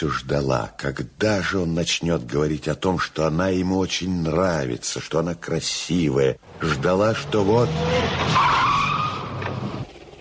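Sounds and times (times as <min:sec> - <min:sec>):
speech: 0:00.0 - 0:08.9
tires squealing as a large black car rolls up to an entrance: 0:06.6 - 0:09.9.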